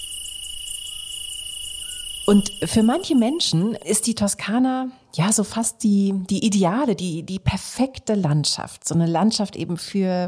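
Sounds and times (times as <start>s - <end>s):
dense chorus of crickets chirping in Tuscan countryside: 0.0s - 4.2s
speech: 2.3s - 10.2s.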